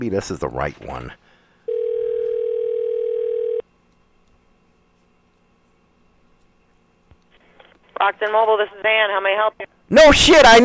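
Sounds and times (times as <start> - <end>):
speech: 0.0 - 1.4, 8.0 - 10.6
electronic ringing tone on a phone line: 1.7 - 3.6.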